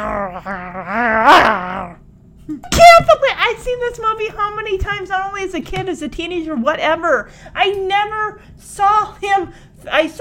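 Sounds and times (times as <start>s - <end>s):
boy growling: 0.0s - 2.0s
speech: 0.0s - 10.1s.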